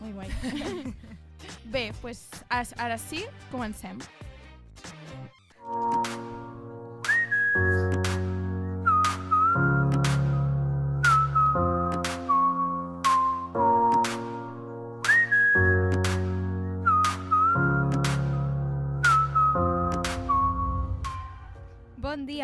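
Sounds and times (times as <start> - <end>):
laughter: 0.2 - 1.5
speech: 0.2 - 4.2
pop song with whistled melody over chords and punchy beat: 5.6 - 21.7.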